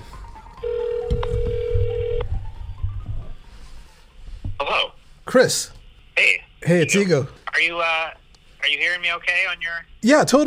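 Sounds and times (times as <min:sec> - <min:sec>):
low noise: 0:00.0 - 0:10.4
cell phone call ringing while dialing: 0:00.6 - 0:02.3
speech: 0:05.3 - 0:08.2, 0:08.8 - 0:10.4.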